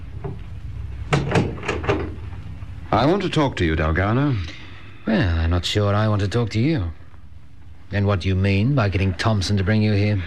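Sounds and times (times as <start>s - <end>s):
door being closed: 0.0s - 2.4s
speech: 2.9s - 7.0s, 7.9s - 10.2s.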